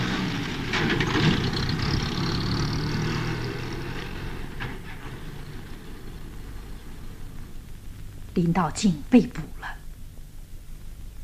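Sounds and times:
small car engine pulling away: 0.0 - 8.2
speech: 8.4 - 9.8.

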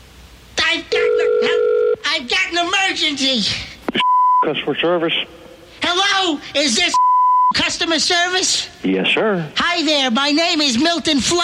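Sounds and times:
telephone line ringing tone: 1.0 - 2.0
speech: 2.2 - 5.5, 6.2 - 11.4.

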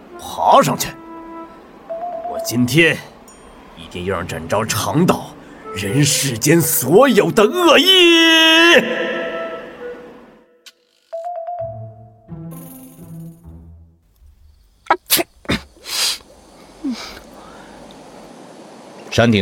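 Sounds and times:
speech: 0.2 - 1.0, 2.3 - 3.1, 3.8 - 9.2, 19.2 - 19.3
person sneezing beside a pool on a mountaintop: 14.9 - 16.2.

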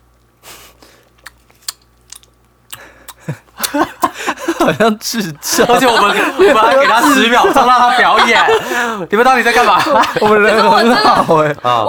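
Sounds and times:
wet chewing and crunching of food: 1.0 - 4.1
mouth noises and bites: 1.2 - 4.2
laughter: 3.2 - 11.6
speech: 4.6 - 11.8.

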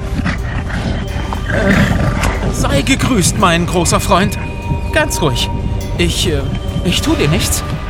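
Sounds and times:
gorilla roaring after being let out of a cage: 0.0 - 2.8
speech: 2.6 - 7.8.

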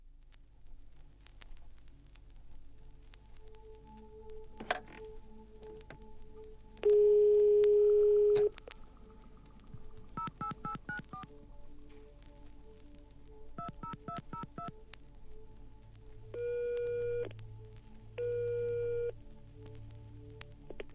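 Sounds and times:
low static hum: 0.0 - 20.9
Dutch telephone network long tone: 6.8 - 8.6, 18.2 - 19.1.

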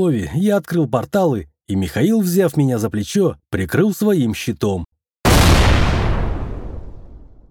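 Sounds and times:
speech: 0.0 - 4.9
cannon firing: 5.3 - 7.4.

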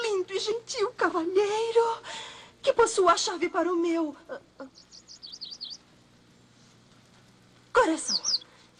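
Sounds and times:
speech: 0.2 - 4.9, 7.8 - 8.3
small blue bird chirping: 4.6 - 5.9, 7.9 - 8.5.

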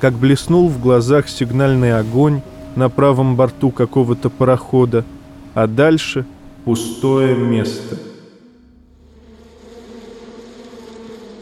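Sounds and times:
speech: 0.0 - 8.1
insects buzzing on a spring morning: 0.0 - 11.4.

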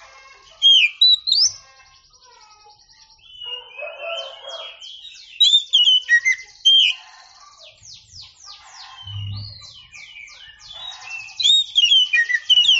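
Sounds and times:
oriental magpie-robin song: 0.0 - 12.7
low thump: 9.1 - 9.7.

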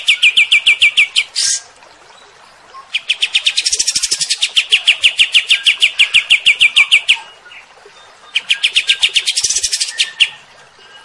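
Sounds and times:
kept cream-vented bulbul singing bright repeated notes: 0.0 - 1.7, 2.8 - 7.7, 8.3 - 11.0.

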